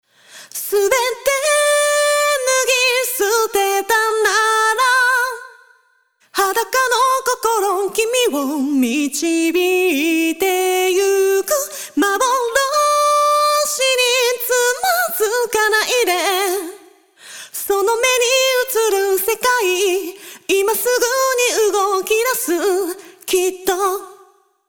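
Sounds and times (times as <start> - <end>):
compressed vocals: 0.0 - 24.6.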